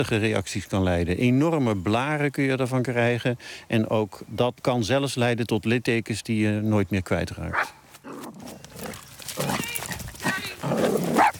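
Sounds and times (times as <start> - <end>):
speech: 0.0 - 7.8
dogs barking while playing: 9.4 - 11.3.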